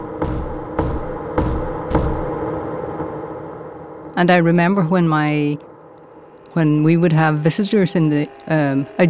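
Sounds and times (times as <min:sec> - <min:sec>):
heavy knocks on a bedroom floor: 0:00.0 - 0:02.4
steady hum: 0:00.0 - 0:09.0
speech: 0:04.2 - 0:05.7, 0:06.6 - 0:09.0.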